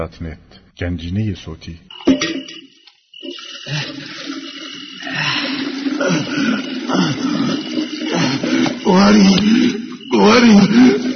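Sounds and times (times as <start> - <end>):
speech: 0.0 - 2.3, 3.7 - 4.2, 6.1 - 7.8, 8.9 - 11.1
water pouring into a container to put in the back of a car: 2.0 - 11.1.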